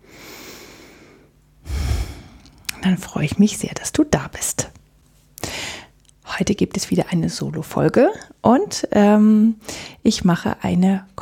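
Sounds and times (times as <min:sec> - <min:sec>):
person breathing deeply during a relaxation exercise: 0:00.0 - 0:02.7
speech: 0:02.8 - 0:04.8, 0:06.4 - 0:11.2.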